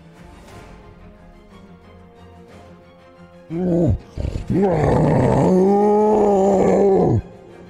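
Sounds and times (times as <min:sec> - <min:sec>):
person grunting roughly: 0:03.5 - 0:07.4
person letting out a loud throaty roar: 0:03.5 - 0:07.4.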